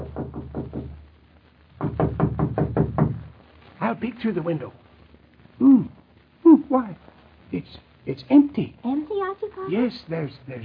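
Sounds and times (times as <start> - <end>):
knocking on a wooden door: 0.0 - 1.0, 1.8 - 3.3
speech: 3.9 - 4.8, 6.7 - 10.6.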